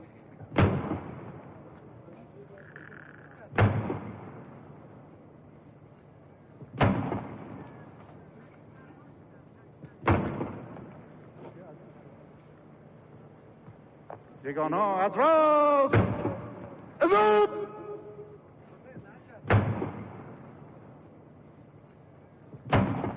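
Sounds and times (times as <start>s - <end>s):
low murmur: 0.0s - 23.1s
ceremonial cannon salute shots: 0.5s - 1.6s, 3.6s - 4.8s, 6.8s - 7.6s, 10.0s - 11.0s, 15.8s - 17.2s, 19.5s - 20.8s, 22.6s - 23.1s
speech: 14.5s - 16.0s, 17.1s - 17.6s.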